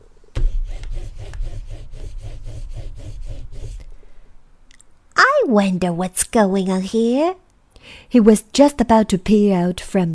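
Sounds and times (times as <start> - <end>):
hand saw cutting wood: 0.4 - 3.9
speech: 5.5 - 10.1.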